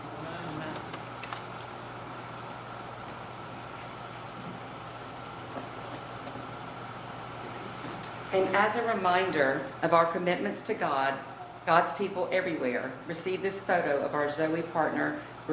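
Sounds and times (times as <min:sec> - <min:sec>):
bunch of building keys jangling as they are handed over during a church ceremony: 0:04.8 - 0:06.7
speech: 0:08.3 - 0:15.5.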